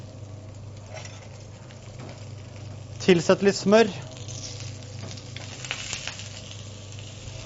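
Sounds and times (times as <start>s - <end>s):
king crab sizzling in hot virgin olive oil with garlic, ginger and chili: 0.0s - 7.4s
speech: 3.1s - 4.1s.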